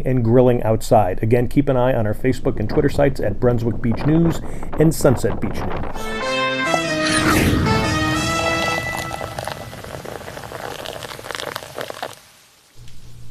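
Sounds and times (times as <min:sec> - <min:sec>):
speech: 0:00.0 - 0:06.3
heavy rain from a hurricane pouring: 0:05.6 - 0:12.8
brief tonal sound: 0:06.0 - 0:11.2.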